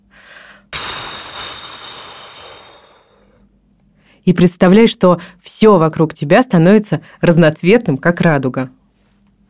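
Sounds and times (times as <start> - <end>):
soft inhale: 0.0 - 4.2
long noisy exhale through the mouth: 0.2 - 3.5
speech: 4.2 - 8.8.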